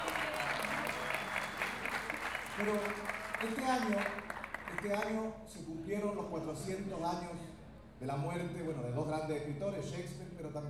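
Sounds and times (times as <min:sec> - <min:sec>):
audience applause at a payador folk-poetry event: 0:00.0 - 0:05.2
speech: 0:02.6 - 0:10.6.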